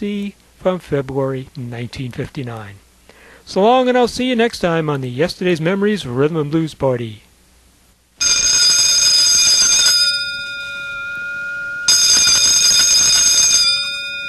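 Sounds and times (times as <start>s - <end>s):
speech: 0.0s - 2.8s, 3.5s - 7.2s
loud harsh bell ringing in a song: 8.2s - 14.2s.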